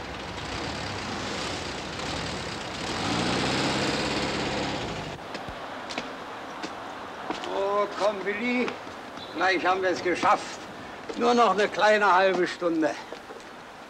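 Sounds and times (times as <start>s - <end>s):
vehicle engine running as it drives on: 0.0s - 5.2s
speech: 8.1s - 13.1s.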